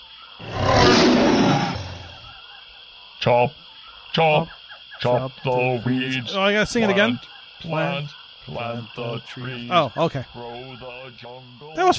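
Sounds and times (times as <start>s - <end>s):
tiger roaring: 0.4s - 2.3s
speech: 3.2s - 11.9s.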